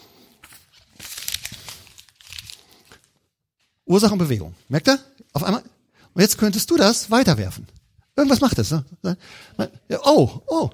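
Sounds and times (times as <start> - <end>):
paper being crumpled into a ball: 0.2 - 3.2
speech: 3.9 - 10.7.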